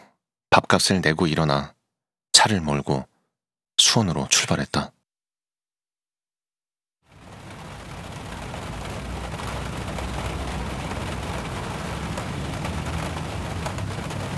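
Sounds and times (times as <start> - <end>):
speech: 0.7 - 1.8, 2.4 - 3.1, 3.8 - 5.0
heavy rain shower: 7.1 - 14.3.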